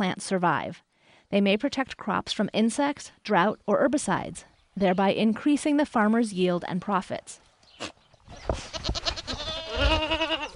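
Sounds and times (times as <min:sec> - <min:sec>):
speech: 0:00.0 - 0:09.0
faint rustle of farmyard noise: 0:07.3 - 0:10.5
dairy goats bleating: 0:08.6 - 0:10.5.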